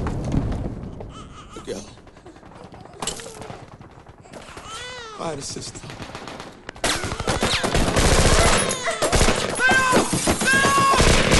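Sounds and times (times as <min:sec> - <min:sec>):
gunfire bursts in a film chase: 0:02.0 - 0:11.3
speech: 0:05.2 - 0:06.0
people shouting and crying out: 0:07.0 - 0:11.3.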